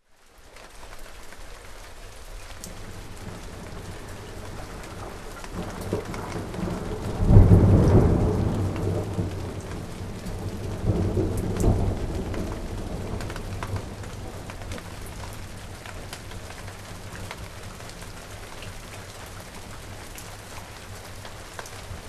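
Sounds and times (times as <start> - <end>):
rain: 0.0 - 22.0
thunder rumbling: 2.7 - 17.8.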